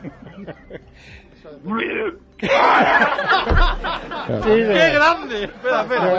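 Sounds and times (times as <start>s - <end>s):
laughter: 0.0s - 0.9s, 2.4s - 6.1s
speech: 0.0s - 6.1s
person vocally imitating a cow regurgitating with gurgling and retching: 1.7s - 2.2s.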